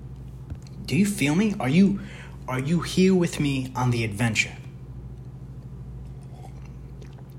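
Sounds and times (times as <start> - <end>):
steady low hum: 0.0 - 7.3
speech: 0.9 - 4.6
person sipping water with wet mouth and swallowing noises: 6.0 - 7.3.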